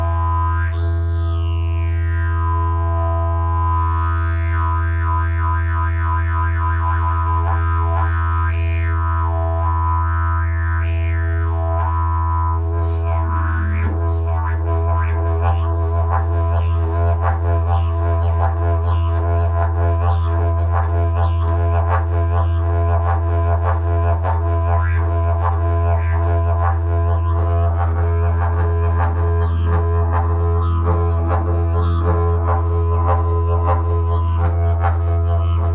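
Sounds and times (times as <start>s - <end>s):
didgeridoo: 0.0s - 35.7s.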